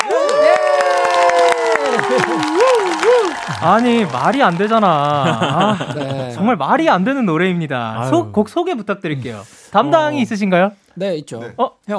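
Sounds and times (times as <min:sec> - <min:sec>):
small group cheering and whooping in a studio: 0:00.0 - 0:06.0
small group clapping in a studio: 0:00.0 - 0:06.3
laughter: 0:01.8 - 0:06.6
speech: 0:03.5 - 0:11.9.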